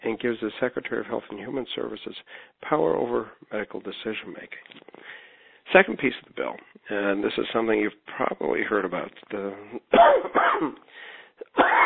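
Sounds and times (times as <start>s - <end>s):
speech: 0.0s - 11.8s
throat clearing: 9.8s - 11.8s
man coughing: 9.9s - 10.8s, 11.4s - 11.8s.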